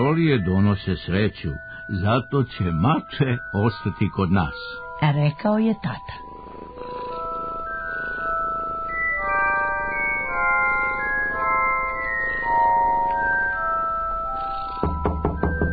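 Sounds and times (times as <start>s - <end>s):
speech: 0.0s - 6.2s
soft melodic music with held tonal notes: 0.0s - 15.7s
someone knocking in rapid sharp raps: 14.8s - 15.7s.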